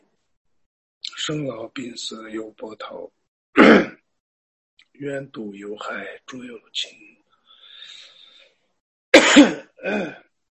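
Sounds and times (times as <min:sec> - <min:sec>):
speech: 0:01.3 - 0:03.2, 0:05.0 - 0:07.2, 0:09.4 - 0:10.2
person coughing harshly: 0:03.6 - 0:04.0, 0:09.2 - 0:10.2.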